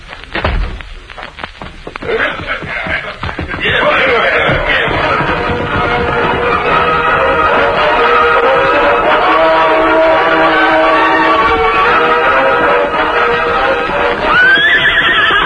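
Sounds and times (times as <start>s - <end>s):
horses galloping away in a Western scene: 0.0s - 15.4s
laughter: 2.0s - 11.4s
horses whinnying in a Western scene: 2.1s - 15.4s.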